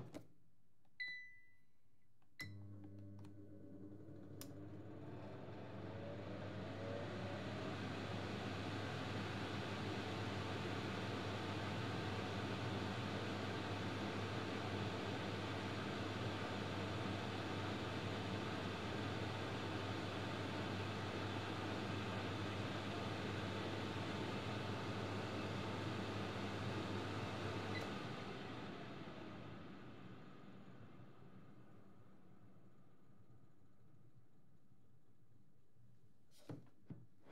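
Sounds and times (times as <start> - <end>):
air fryer running: 2.4 - 32.6.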